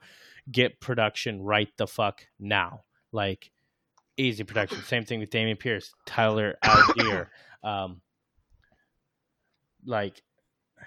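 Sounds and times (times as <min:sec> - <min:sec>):
speech: 0:00.5 - 0:03.6, 0:04.2 - 0:08.1, 0:09.8 - 0:10.8
short voiced coughs: 0:04.6 - 0:04.9, 0:06.6 - 0:07.3.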